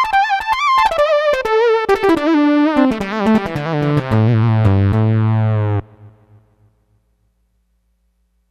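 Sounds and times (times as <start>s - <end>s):
neat lead synth: 0.1s - 6.5s.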